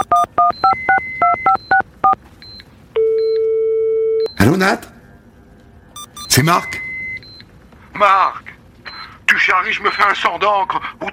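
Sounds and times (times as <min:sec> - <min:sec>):
telephone keypad dialing tones from a phone placing a call: 0:00.0 - 0:04.3
speech: 0:04.5 - 0:04.9, 0:06.4 - 0:06.8, 0:08.0 - 0:08.4, 0:09.4 - 0:11.1.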